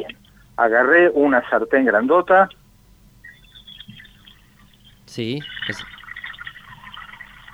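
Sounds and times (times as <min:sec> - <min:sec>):
speech: 0:00.0 - 0:02.6, 0:05.1 - 0:06.0
water running from kitchen faucet: 0:05.3 - 0:07.5.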